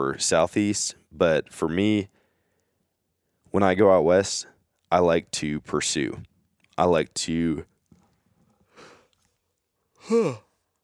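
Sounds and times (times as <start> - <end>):
speech: 0.0 - 2.2, 3.6 - 7.7, 10.0 - 10.4
person yawning: 10.0 - 10.5.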